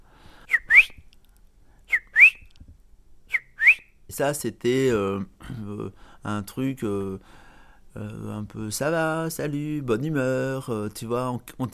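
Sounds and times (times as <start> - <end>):
person whistling an imitation of a greenfinch call: 0.5 - 1.1, 1.9 - 2.5, 3.3 - 4.0
speech: 4.1 - 11.7.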